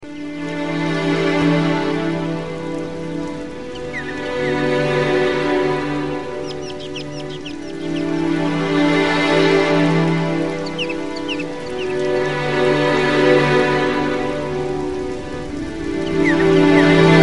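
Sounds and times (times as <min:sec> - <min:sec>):
nature ambience: 0:00.0 - 0:17.2
bird: 0:02.8 - 0:04.6, 0:06.1 - 0:12.3, 0:15.8 - 0:17.2.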